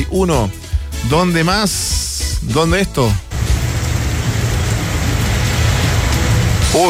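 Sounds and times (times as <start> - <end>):
speech: 0.0 - 3.2
heavy rain pouring in a thunderstorm: 3.3 - 6.8.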